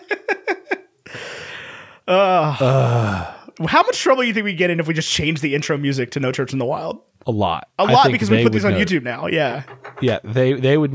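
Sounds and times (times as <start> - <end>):
person yawning with groaning exhale: 2.1 - 3.5
speech: 2.1 - 10.9.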